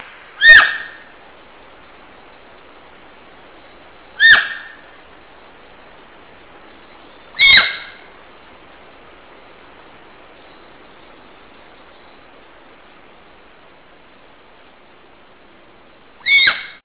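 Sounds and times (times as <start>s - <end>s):
deer call: 0.4s - 1.1s, 4.2s - 4.8s, 7.4s - 8.1s, 16.2s - 16.8s.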